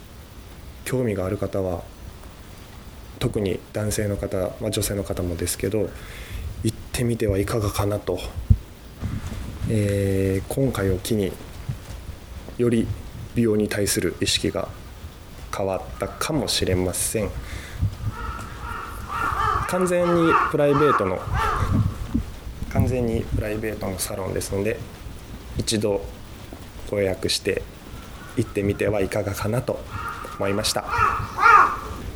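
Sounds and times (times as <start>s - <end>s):
speech: 0.9s - 2.0s, 3.2s - 8.4s, 9.7s - 11.5s, 12.6s - 14.8s, 15.6s - 17.7s, 19.7s - 21.4s, 22.9s - 25.0s, 25.6s - 26.2s, 26.9s - 27.8s, 28.4s - 31.1s
crows cawing: 5.9s - 6.4s, 15.7s - 22.4s, 27.0s - 32.1s.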